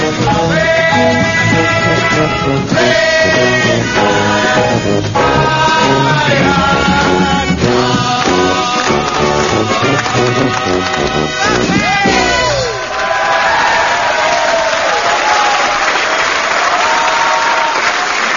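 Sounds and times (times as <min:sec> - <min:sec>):
loud dense crowd roaring and cheering: 0:00.0 - 0:18.3
overlapping shouts and whoops: 0:09.7 - 0:18.1.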